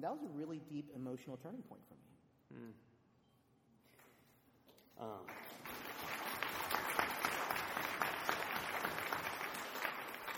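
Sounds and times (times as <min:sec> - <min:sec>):
speech: 0:00.0 - 0:02.9, 0:05.0 - 0:05.9
audience applause: 0:05.3 - 0:10.3.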